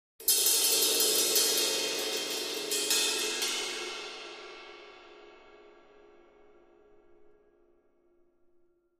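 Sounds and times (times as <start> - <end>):
cymbal trill: 0.2 - 7.4.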